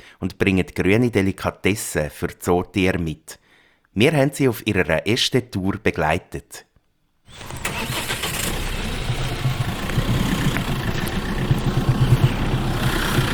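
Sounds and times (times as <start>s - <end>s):
speech: 0.2s - 3.4s, 4.0s - 6.7s, 7.3s - 8.0s
truck diesel engine idling: 7.3s - 13.3s.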